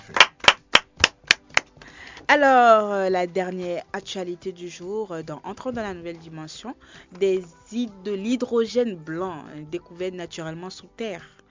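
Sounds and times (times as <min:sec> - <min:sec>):
hands clapping in applause: 0:00.0 - 0:02.0
speech: 0:02.3 - 0:11.4.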